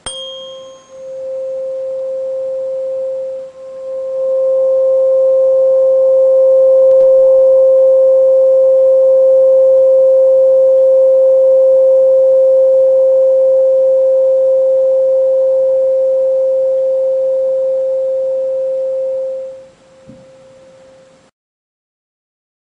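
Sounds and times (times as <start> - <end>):
528 Hz tuning fork tone: 0.0 - 21.3.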